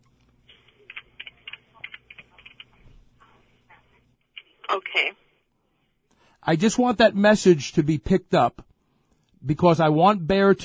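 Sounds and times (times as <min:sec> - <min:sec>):
low steady hum: 0:00.0 - 0:10.6
woman typing on a computer keyboard: 0:00.5 - 0:02.8
speech: 0:04.8 - 0:05.2, 0:06.4 - 0:08.7, 0:09.4 - 0:10.6.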